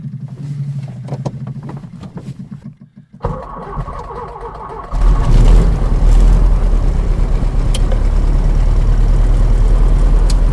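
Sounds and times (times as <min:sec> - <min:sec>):
small aircraft engine cranking over and catching: 0:00.0 - 0:10.5
small aircraft engine loud steady throaty drone: 0:03.4 - 0:10.5.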